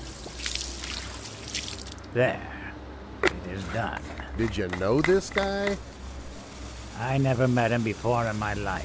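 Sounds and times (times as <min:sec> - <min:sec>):
liquid poured from a thermos onto a grave: 0:00.0 - 0:02.1
speech: 0:02.1 - 0:02.5, 0:03.2 - 0:05.9, 0:07.0 - 0:08.8.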